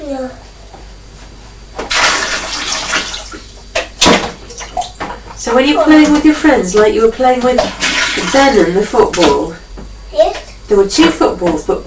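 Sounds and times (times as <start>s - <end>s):
child splashing water in a bath: 1.9s - 5.2s, 5.8s - 9.6s
speech: 5.4s - 9.6s, 10.7s - 11.8s.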